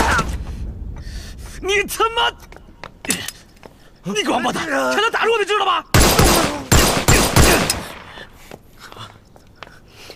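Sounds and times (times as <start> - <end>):
speech: 1.7 - 2.5, 4.0 - 5.9
gunshots: 6.0 - 8.1.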